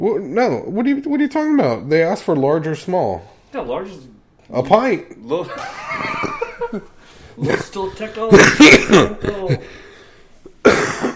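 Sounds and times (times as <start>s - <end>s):
speech: 0.0s - 9.8s
laughter: 5.4s - 9.7s
person coughing while recovering from pneumonia: 8.3s - 9.8s, 10.6s - 11.1s
throat clearing: 8.4s - 9.6s, 10.6s - 11.1s.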